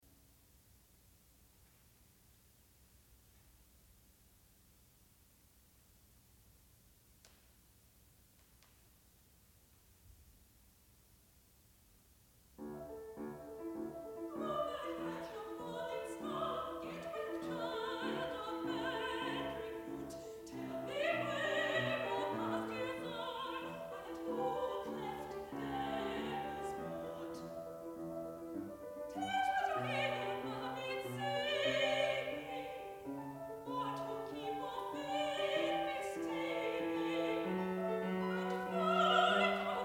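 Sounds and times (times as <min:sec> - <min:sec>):
English songs: 0:12.6 - 0:39.8.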